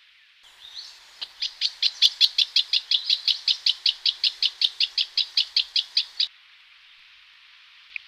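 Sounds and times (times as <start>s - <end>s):
brown-headed honeyeater calling: 0.5s - 6.3s.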